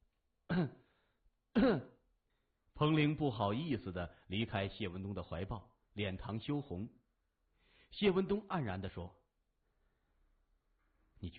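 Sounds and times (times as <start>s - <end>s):
man forcefully clearing his itchy throat: 0.5s - 0.9s, 1.5s - 2.0s
speech: 1.6s - 1.9s, 2.8s - 7.0s, 7.9s - 9.2s, 11.2s - 11.3s.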